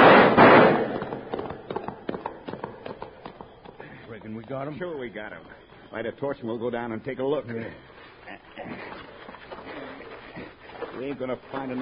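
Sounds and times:
gunfire in a Western ambush: 0.0s - 3.1s
speech: 4.6s - 7.9s, 8.6s - 8.9s, 11.0s - 11.8s.

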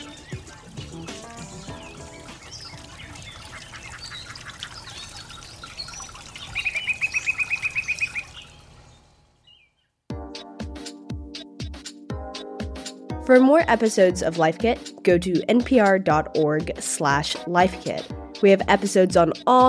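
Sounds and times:
rhythmic musical passage: 0.0s - 4.3s, 10.1s - 19.6s
bird calls: 0.0s - 10.0s
speech: 13.3s - 19.6s.

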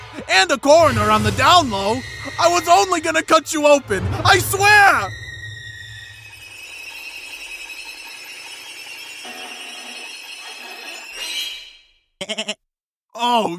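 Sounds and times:
speech: 0.2s - 5.2s, 12.3s - 12.6s, 13.2s - 13.5s
goat bleating: 12.2s - 12.6s.

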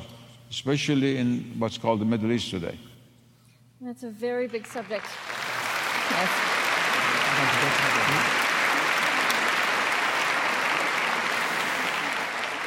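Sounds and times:
speech: 0.5s - 2.9s, 3.8s - 5.3s, 6.1s - 6.5s
crowd applauding: 4.6s - 12.6s.

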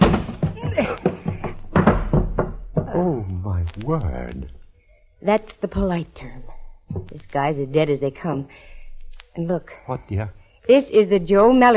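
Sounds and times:
door being forced open with shoulder: 0.0s - 3.1s
strained voices and grunts: 0.5s - 1.7s, 2.9s - 4.4s
speech: 3.0s - 4.6s, 5.2s - 8.7s, 9.4s - 11.7s.

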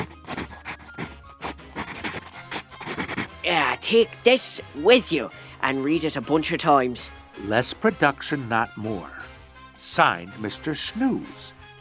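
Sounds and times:
pencil scratching across paper in quick irregular strokes: 0.0s - 3.3s
speech: 3.5s - 9.2s, 9.9s - 11.6s.

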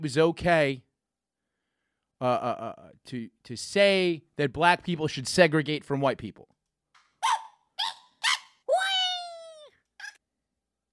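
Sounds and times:
speech: 0.0s - 0.9s, 2.2s - 6.5s
harsh angry bird-like squawking and screeching: 7.2s - 9.0s.

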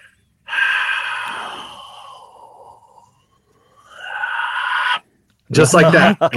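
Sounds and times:
voice imitating heavy breathing on a camera microphone: 0.0s - 5.0s
speech: 5.5s - 6.3s.

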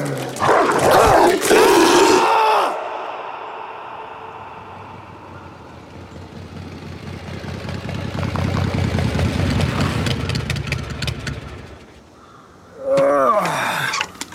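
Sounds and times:
dog barking and growling harshly: 0.0s - 3.2s
hum: 0.0s - 14.3s.

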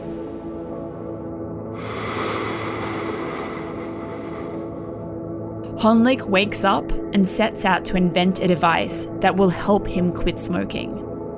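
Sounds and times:
ocean waves crashing: 1.8s - 5.0s
speech: 5.8s - 11.0s.

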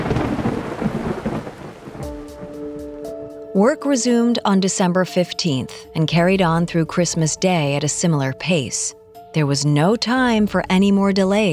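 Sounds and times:
heavy rain pouring in a thunderstorm: 0.0s - 2.7s
deep thunder rumbles: 0.0s - 2.8s
speech: 3.6s - 11.5s.

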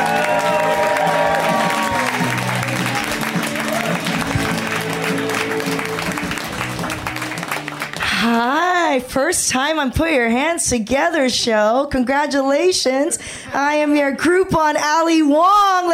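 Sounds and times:
audience cheers: 0.0s - 8.0s
large audience applauding: 0.0s - 8.4s
speech: 9.0s - 15.9s.

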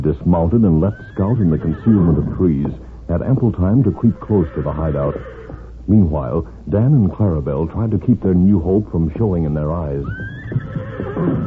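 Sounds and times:
speech: 0.1s - 11.4s
horse neighing: 0.6s - 5.7s, 9.9s - 11.4s.

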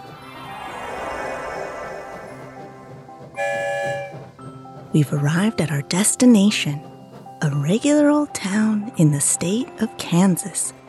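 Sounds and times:
train rumbling through a tunnel: 0.0s - 10.8s
bright sustained horn-like tone blaring: 3.3s - 4.4s
speech: 4.9s - 6.9s, 7.7s - 10.8s.

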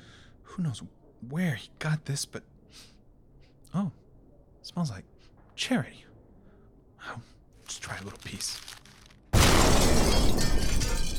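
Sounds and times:
speech: 0.6s - 3.0s, 3.7s - 4.0s, 4.6s - 6.1s, 7.0s - 8.8s
loud explosion downtown: 9.4s - 10.9s.

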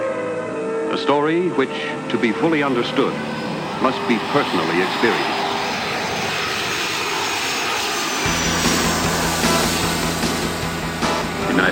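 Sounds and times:
United jet airliner engines roaring on final approach at Austin Airport: 0.0s - 11.7s
speech: 0.9s - 5.4s.

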